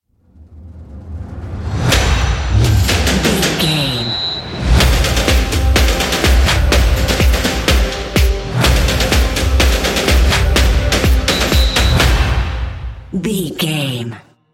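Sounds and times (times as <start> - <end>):
football march: 2.4 - 13.5.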